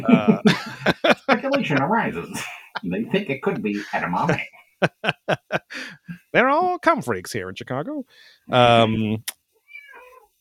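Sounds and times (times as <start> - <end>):
speech: 0.0 - 0.7, 1.7 - 9.4
laughter: 0.0 - 6.2
cat meowing: 9.6 - 10.3.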